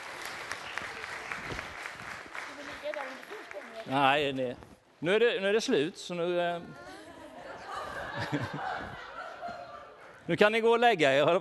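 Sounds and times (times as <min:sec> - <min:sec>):
audience applauding for the sheep: 0:00.0 - 0:04.2
speech: 0:03.9 - 0:06.9, 0:08.2 - 0:09.0, 0:10.3 - 0:11.4
laughter: 0:06.9 - 0:10.3.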